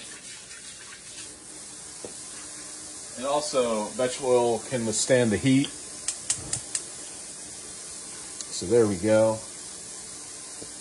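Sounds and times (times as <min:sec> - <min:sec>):
hands washed under a running tap: 0:00.0 - 0:02.6
running tap water: 0:00.0 - 0:10.7
speech: 0:03.2 - 0:05.8, 0:08.6 - 0:09.5.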